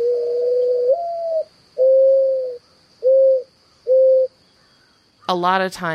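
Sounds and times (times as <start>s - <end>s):
mourning dove cooing: 0.0s - 4.3s
speech: 5.3s - 5.9s.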